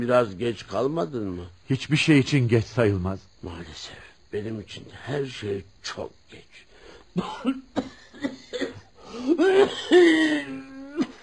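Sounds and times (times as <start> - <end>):
speech: 0.0 - 7.9, 9.1 - 11.1
character coughing in a radio drama: 7.2 - 11.2.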